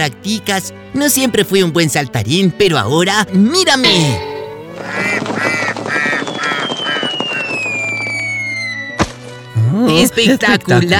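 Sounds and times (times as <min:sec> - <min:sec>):
speech: 0:00.0 - 0:04.3, 0:10.0 - 0:10.9
sharp crack: 0:03.9 - 0:09.4
nasal duck quacking: 0:04.8 - 0:07.0
long falling whistle tone: 0:06.2 - 0:09.1.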